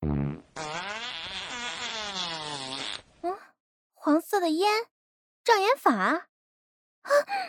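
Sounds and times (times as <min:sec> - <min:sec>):
long buzzy fart: 0:00.0 - 0:03.1
speech: 0:04.5 - 0:04.9, 0:05.5 - 0:06.3, 0:07.0 - 0:07.4.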